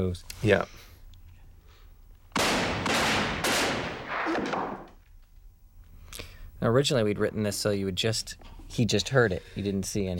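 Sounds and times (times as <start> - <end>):
speech: 0.0 - 0.9, 6.6 - 10.1
gunshots in a film scene: 2.3 - 4.9.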